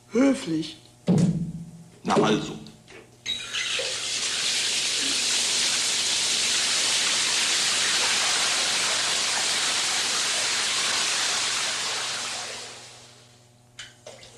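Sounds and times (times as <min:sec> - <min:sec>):
speech: 0:00.1 - 0:01.2, 0:02.2 - 0:02.6
water gushing from a running tap: 0:03.4 - 0:13.2.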